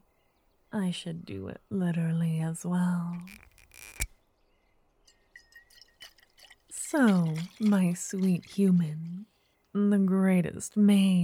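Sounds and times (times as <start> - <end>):
speech: 0.7 - 4.0, 6.9 - 11.2
small drips: 5.0 - 9.7
faint glassy clinks: 5.1 - 6.6
wine pouring into a cup: 5.4 - 9.4.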